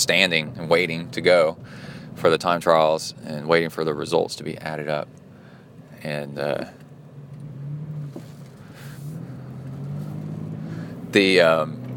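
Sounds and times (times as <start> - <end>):
speech: 0.0 - 5.2, 6.0 - 6.8, 11.1 - 11.8
road and traffic noise: 0.0 - 11.9
car engine accelerating in traffic: 6.2 - 11.9.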